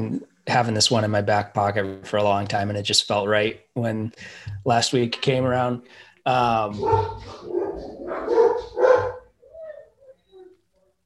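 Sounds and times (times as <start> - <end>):
speech: 0.0 - 9.2
dog barking: 6.8 - 9.3
dog whimpering: 6.8 - 11.0.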